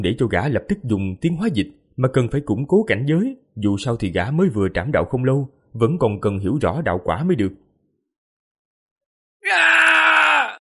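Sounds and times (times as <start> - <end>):
speech: 0.0 - 7.6, 9.4 - 9.8
creature chased by a large black dog screaming in a forest: 9.4 - 10.6.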